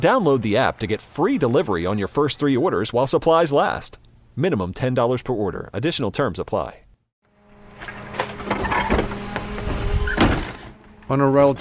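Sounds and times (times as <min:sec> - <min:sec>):
speech: 0:00.0 - 0:06.8, 0:11.1 - 0:11.5
garbage truck engine droning on a tree-lined street in New Orleans: 0:07.3 - 0:11.5
garbage truck hydraulic machinery whining: 0:07.4 - 0:11.3.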